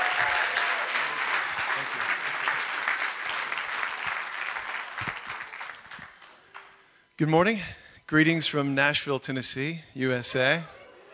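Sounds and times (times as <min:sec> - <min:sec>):
large indoor crowd clapping and applauding: 0:00.0 - 0:06.8
speech: 0:07.2 - 0:10.8.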